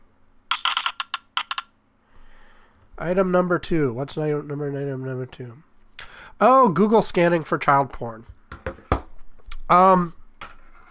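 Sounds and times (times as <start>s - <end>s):
dice being rolled: 0.5s - 1.7s
speech: 3.0s - 5.7s, 6.4s - 8.4s, 9.7s - 10.2s.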